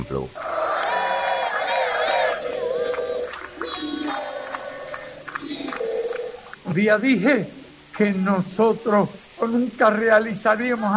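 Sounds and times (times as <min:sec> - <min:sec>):
speech: 0:00.0 - 0:00.5, 0:06.7 - 0:10.9
large crowd cheering and shouting: 0:00.0 - 0:06.7
clapping: 0:01.6 - 0:06.6.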